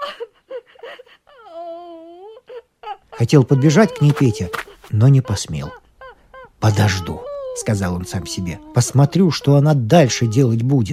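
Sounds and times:
voice imitating an old woman crying: 2.8s - 10.9s
speech: 3.2s - 5.8s, 6.6s - 10.9s.

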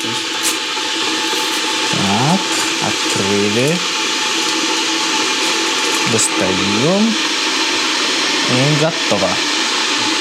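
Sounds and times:
electric kettle heating water with a rushing roar: 0.0s - 10.1s
speech: 2.3s - 4.0s, 6.1s - 7.3s, 8.5s - 9.5s.

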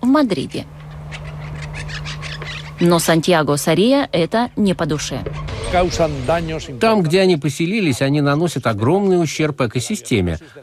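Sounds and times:
steady low hum: 0.0s - 8.6s
speech: 0.1s - 0.8s, 2.8s - 10.6s
monk parakeets squawking in Madrid Spain: 0.4s - 5.6s.

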